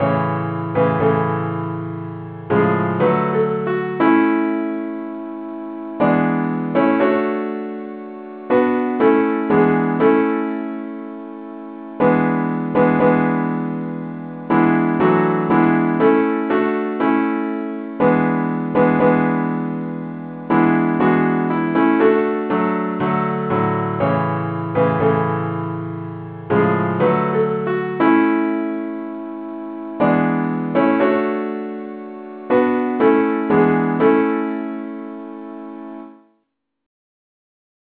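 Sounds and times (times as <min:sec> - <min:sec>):
simple accompaniment music in the key of A: 0:00.0 - 0:36.4.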